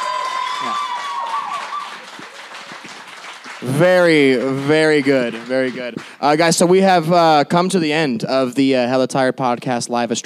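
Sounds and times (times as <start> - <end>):
cheers and whoops: 0.0 - 2.9
live audience applause: 0.0 - 6.4
speech: 3.6 - 10.2.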